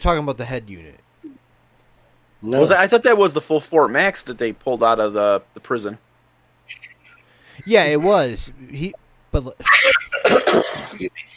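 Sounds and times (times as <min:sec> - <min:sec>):
speech: 0:00.0 - 0:01.0, 0:02.4 - 0:06.1, 0:06.7 - 0:06.9, 0:07.6 - 0:11.3
loud cough: 0:10.0 - 0:11.1.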